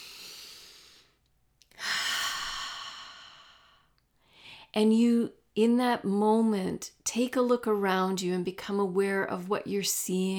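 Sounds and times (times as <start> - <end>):
person taking a deep breath: 0.0 - 4.7
speech: 4.7 - 10.3.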